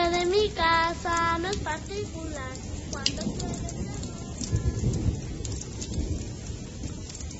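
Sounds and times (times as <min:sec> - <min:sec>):
deep roll of thunder: 0:00.0 - 0:07.3
heavy rain pouring steadily: 0:00.0 - 0:07.3
speech: 0:01.6 - 0:03.8.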